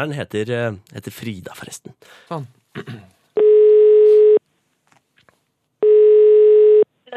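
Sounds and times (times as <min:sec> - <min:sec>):
speech: 0:00.0 - 0:03.2
telephone ringback tone after dialing a number: 0:03.4 - 0:04.4, 0:05.8 - 0:06.9.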